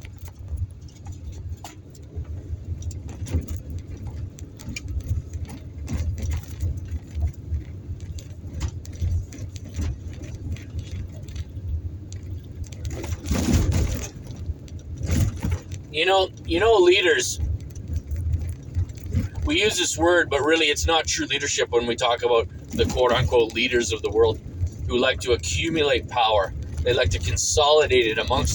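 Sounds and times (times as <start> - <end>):
small ticks and rattles: 0.0 - 16.7, 17.4 - 19.5, 23.7 - 25.1
car driving on a back-country road: 0.0 - 28.5
speech: 16.0 - 17.4, 19.5 - 28.5.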